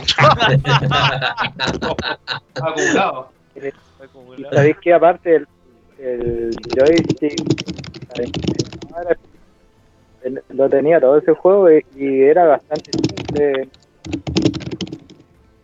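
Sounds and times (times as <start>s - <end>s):
laughter: 0.0s - 7.5s, 10.3s - 13.8s
speech: 0.1s - 9.3s, 10.2s - 14.8s
old typewriter keystrokes clattering: 6.5s - 8.9s, 12.7s - 15.2s.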